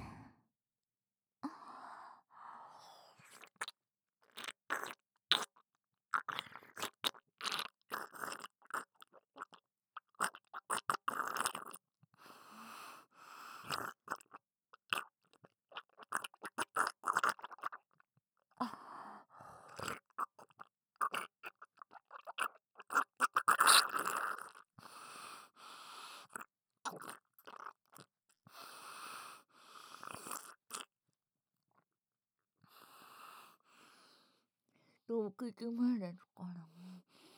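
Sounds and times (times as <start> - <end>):
eating and chewing close to the ear: 3.3 - 11.8, 13.7 - 17.9, 19.7 - 24.6, 26.3 - 28.1, 30.0 - 30.9
speech: 35.1 - 36.2.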